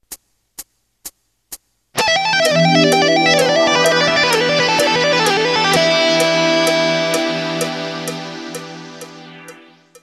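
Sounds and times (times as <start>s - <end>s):
wide range scales in E: 2.0s - 9.8s.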